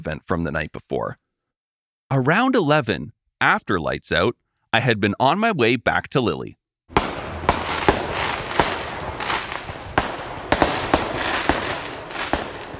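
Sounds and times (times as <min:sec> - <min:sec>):
speech: 0:00.0 - 0:01.2, 0:02.1 - 0:07.1
fireworks bangs at night: 0:06.9 - 0:12.7.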